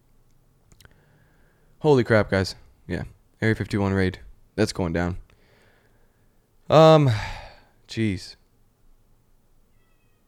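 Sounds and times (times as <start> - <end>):
speech: 1.8 - 5.2, 6.7 - 7.3, 7.9 - 8.4
faint high-pitched cat meow: 9.7 - 10.2.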